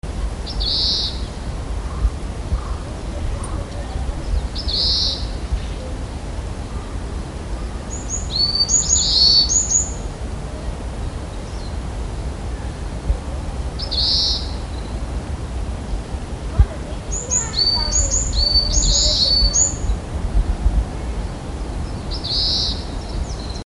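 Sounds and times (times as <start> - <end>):
steady low rumbling background noise: 0.0 - 23.6
Oriental greenfinch buzzy calls and twittering notes: 0.5 - 5.8, 7.6 - 10.0, 13.8 - 14.9, 17.0 - 20.0, 21.9 - 23.6.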